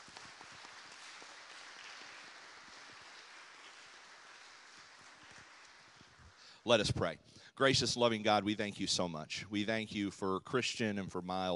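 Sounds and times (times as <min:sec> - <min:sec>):
audience applauding: 0:00.0 - 0:06.8
speech: 0:06.6 - 0:11.5.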